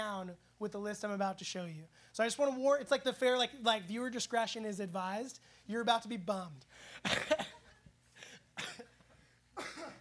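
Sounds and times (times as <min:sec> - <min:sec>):
speech: 0:00.0 - 0:07.6
person coughing: 0:07.0 - 0:07.7, 0:08.6 - 0:09.0, 0:09.6 - 0:09.9.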